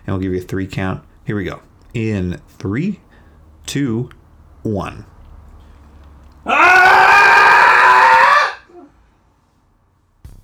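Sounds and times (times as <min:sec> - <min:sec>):
speech: 0:00.1 - 0:03.1, 0:03.7 - 0:05.1
loud sustained cathartic human scream: 0:06.5 - 0:08.9.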